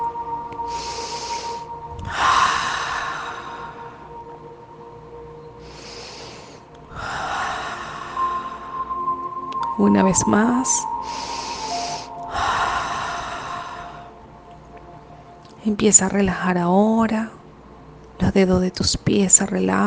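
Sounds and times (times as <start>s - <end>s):
low steady hum: 0.0s - 19.8s
deep slow breaths in through the nose and out through the mouth: 0.6s - 4.3s, 5.5s - 9.4s, 10.9s - 14.4s
speech: 9.8s - 11.3s, 15.7s - 17.4s, 18.4s - 19.8s.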